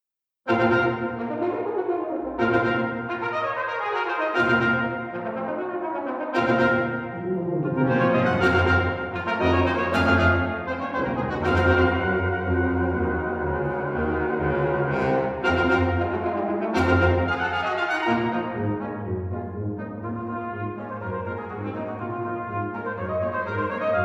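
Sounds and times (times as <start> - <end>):
brass quintet playing a march: 0.5 - 24.0.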